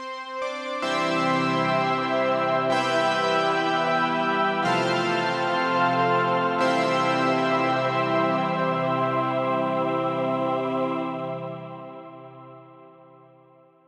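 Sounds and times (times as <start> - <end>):
piano saw choir synth pad made with PADsynth: 0.8 - 13.6.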